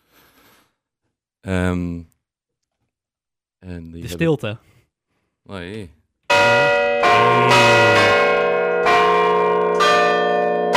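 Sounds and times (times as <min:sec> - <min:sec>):
speech: 0:01.4 - 0:02.1, 0:03.6 - 0:04.8, 0:05.5 - 0:07.9
large church bells ringing: 0:06.3 - 0:10.7.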